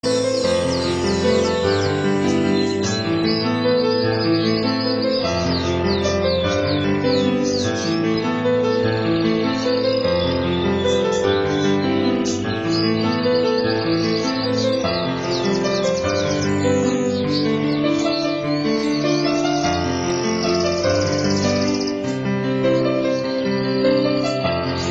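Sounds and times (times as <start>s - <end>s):
relaxing Chinese music: 0.0s - 24.8s.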